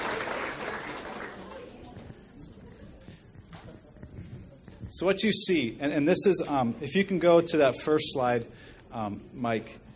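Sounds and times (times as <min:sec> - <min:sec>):
audience applause: 0:00.0 - 0:01.9
faint crowd murmur: 0:00.0 - 0:05.0
speech: 0:04.9 - 0:09.8.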